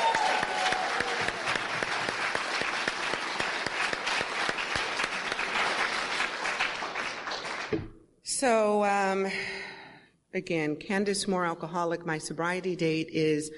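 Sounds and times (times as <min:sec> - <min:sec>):
applause from a sizable audience: 0:00.0 - 0:07.8
speech: 0:08.4 - 0:09.6, 0:10.3 - 0:13.5.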